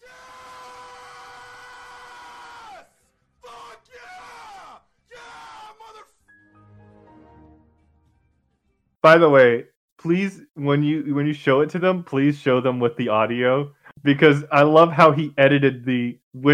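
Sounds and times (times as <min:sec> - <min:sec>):
man screaming at full force: 0:00.0 - 0:06.1
noise: 0:00.0 - 0:16.5
speech: 0:09.0 - 0:16.5.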